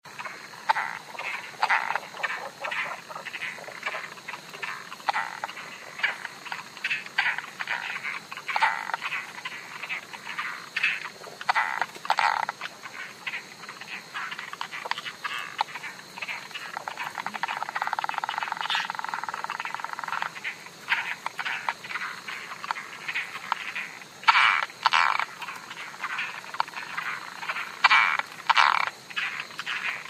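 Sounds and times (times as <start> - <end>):
latouchtis frog: 0.0 - 30.0.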